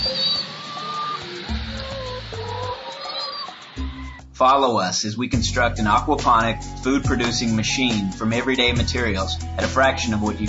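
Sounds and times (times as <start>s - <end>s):
flock of chickens clucking: 0.0s - 4.2s
speech: 4.4s - 10.4s.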